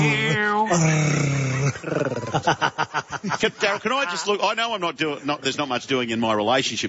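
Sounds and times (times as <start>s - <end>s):
man growling in imitation of an animal's snarl: 0.0s - 2.5s
laughter: 0.0s - 4.7s
speech: 0.0s - 6.8s.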